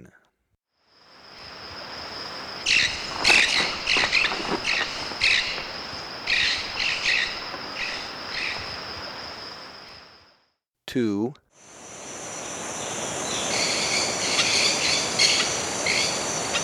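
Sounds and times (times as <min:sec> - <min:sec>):
maroon-tailed parakeet calls in Ecuador: 0:02.6 - 0:10.0, 0:13.5 - 0:16.6.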